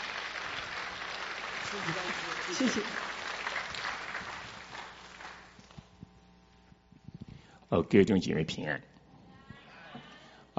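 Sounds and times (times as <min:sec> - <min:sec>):
crowd applauding: 0:00.0 - 0:05.8
speech: 0:01.7 - 0:03.1, 0:07.7 - 0:08.9.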